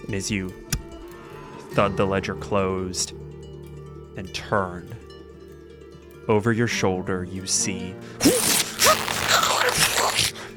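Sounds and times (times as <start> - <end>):
speech: 0.1 - 0.6, 1.7 - 3.4, 4.2 - 5.0, 6.3 - 8.5
tapestry fabric ripped by a bird's claws: 8.2 - 10.5.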